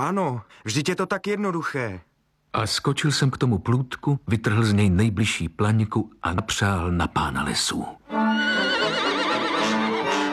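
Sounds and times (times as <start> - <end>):
speech: 0.0 - 8.7
horse rearing and neighing loudly: 8.2 - 10.3.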